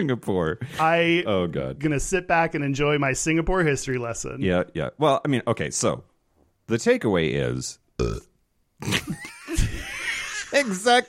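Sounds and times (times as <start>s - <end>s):
speech: 0.0s - 6.1s, 6.7s - 9.2s, 10.6s - 11.0s
person burping: 8.0s - 9.2s
laughter: 8.8s - 11.0s.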